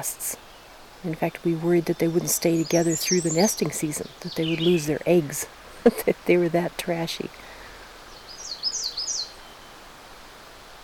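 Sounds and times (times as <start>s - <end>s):
speech: 0.0s - 7.5s
American redstart singing weech-weech: 0.0s - 10.8s
faint hiss: 0.0s - 10.8s.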